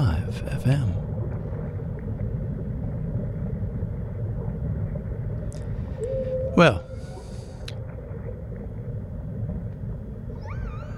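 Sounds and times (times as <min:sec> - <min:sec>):
low steady rumble: 0:00.0 - 0:10.9
speech: 0:00.3 - 0:01.0, 0:06.6 - 0:06.9
whale song in a recorded music track: 0:05.2 - 0:10.9.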